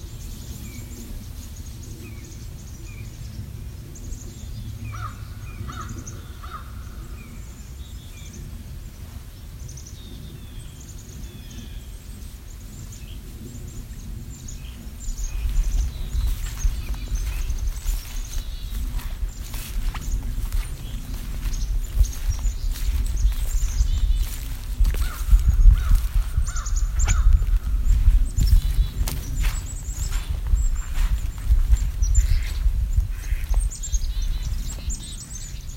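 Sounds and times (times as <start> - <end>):
crow cawing outdoors in spring: 4.9 - 6.8, 25.0 - 27.5
steady rhythmic crunching footsteps: 15.0 - 35.6
chickadee calls: 15.1 - 35.6.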